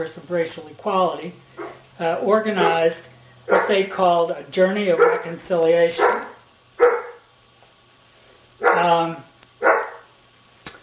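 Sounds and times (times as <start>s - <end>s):
speech: 0.0s - 6.2s
dog barking: 1.6s - 1.8s, 2.6s - 2.9s, 3.5s - 3.8s, 4.9s - 5.4s, 6.0s - 7.2s, 8.6s - 8.9s, 9.6s - 10.1s.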